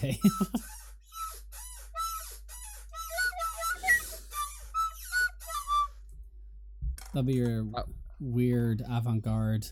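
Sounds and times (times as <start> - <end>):
speech: 0.0 - 0.8, 7.1 - 9.7
person whistling thin tones: 0.0 - 6.1
chair squeaking and creaking: 3.2 - 4.1.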